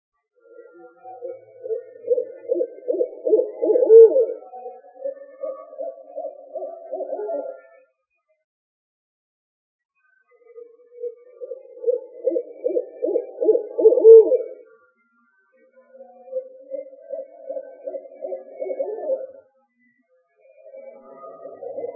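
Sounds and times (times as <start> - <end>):
owl hooting: 0.8 - 7.7, 10.5 - 14.7, 16.3 - 19.4, 20.6 - 21.9.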